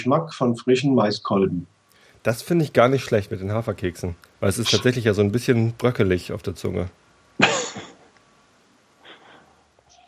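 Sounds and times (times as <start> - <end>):
speech: 0.0 - 7.0
sharp harsh cough from a person tasting whisky: 7.4 - 8.0
soft rough throat-clearing cough from a person tasting whisky: 7.4 - 8.1.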